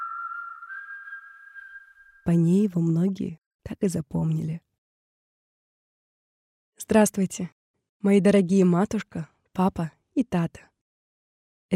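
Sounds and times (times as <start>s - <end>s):
person whistling a long steady note: 0.0s - 2.2s
speech: 2.2s - 4.6s, 6.9s - 10.7s.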